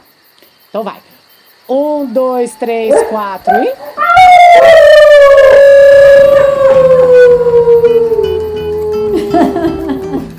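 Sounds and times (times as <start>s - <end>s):
speech: 0.7s - 1.1s, 1.7s - 5.0s
several people howling together imitating a pack howl: 2.9s - 10.3s
people laughing: 9.1s - 10.3s.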